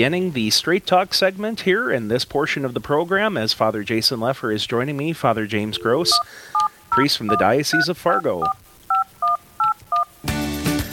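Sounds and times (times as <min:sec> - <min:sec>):
speech: 0:00.0 - 0:08.6
telephone touch-tone DTMF dialing beeps: 0:05.8 - 0:10.1
music or program audio: 0:10.2 - 0:10.9.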